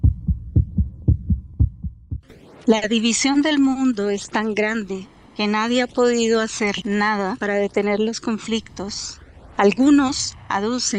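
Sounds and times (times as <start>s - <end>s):
heartbeat sound effect in low double beats: 0.0s - 2.6s
speech: 2.6s - 10.9s.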